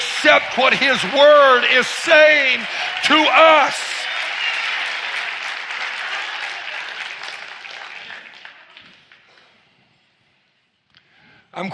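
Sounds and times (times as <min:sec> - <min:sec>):
large audience applauding: 0:00.0 - 0:09.5
speech: 0:00.2 - 0:03.9, 0:11.6 - 0:11.7.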